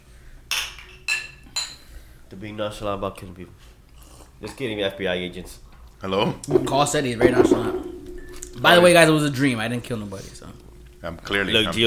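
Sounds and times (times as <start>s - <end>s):
faint low hum: 0.1s - 11.8s
glasses of rum and Pepsi clinking in a toast: 0.5s - 1.9s, 6.5s - 9.2s
speech: 2.3s - 3.7s, 4.4s - 7.9s, 8.6s - 11.8s.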